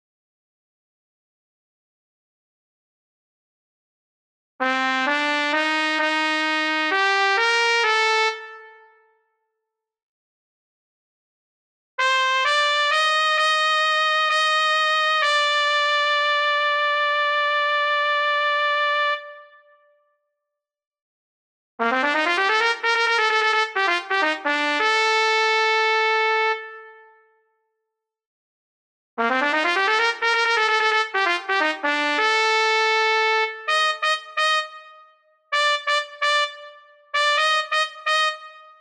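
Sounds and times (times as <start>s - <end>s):
trumpet in Bb playing: 4.6s - 8.9s, 12.0s - 19.6s, 21.9s - 27.0s, 29.2s - 38.7s.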